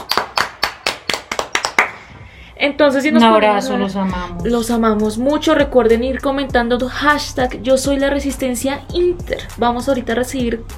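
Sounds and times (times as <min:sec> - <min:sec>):
hand claps from one or a few people: 0:00.0 - 0:02.2
speech: 0:02.6 - 0:10.7.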